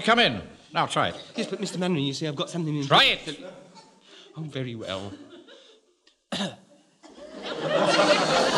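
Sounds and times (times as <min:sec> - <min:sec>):
speech: 0:00.0 - 0:03.6, 0:04.4 - 0:05.3, 0:06.3 - 0:06.6
laughter: 0:04.8 - 0:06.0, 0:07.0 - 0:08.5
person giving a deliberate cough: 0:06.3 - 0:06.8.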